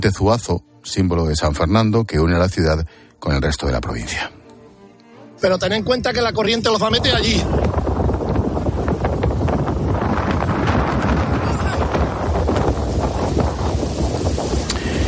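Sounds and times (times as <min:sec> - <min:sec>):
speech: 0:00.0 - 0:04.4, 0:05.4 - 0:07.9
strong wind gusts buffeting the microphone: 0:05.8 - 0:15.0.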